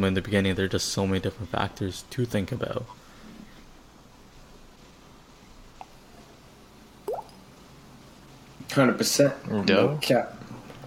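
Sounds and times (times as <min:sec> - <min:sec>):
speech: 0:00.0 - 0:03.0, 0:08.8 - 0:10.4
water plop sound effect: 0:07.1 - 0:07.4.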